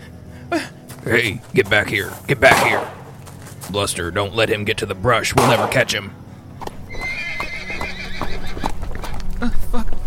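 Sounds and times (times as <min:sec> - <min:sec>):
busy rustling outdoor background: 0:00.0 - 0:10.0
speech: 0:00.5 - 0:03.0, 0:03.7 - 0:06.2, 0:09.4 - 0:10.0
horse hooves clopping: 0:00.8 - 0:10.0
horse whinnying: 0:06.9 - 0:09.2.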